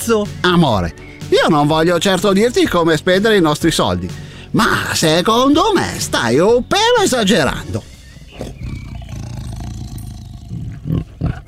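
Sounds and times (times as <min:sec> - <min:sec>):
speech: 0:00.0 - 0:08.5
tiger roaring: 0:08.2 - 0:11.4.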